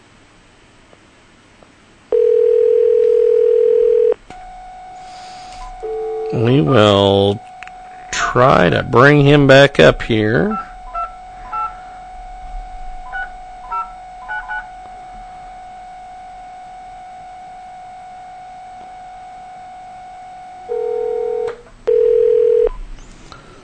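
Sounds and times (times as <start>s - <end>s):
steady humming telephone dial tone: 2.1s - 23.5s
DTMF touch-tone beeps dialing a phone number: 2.2s - 8.6s, 10.5s - 14.7s, 21.9s - 22.8s
speech: 6.6s - 7.5s, 8.4s - 10.7s.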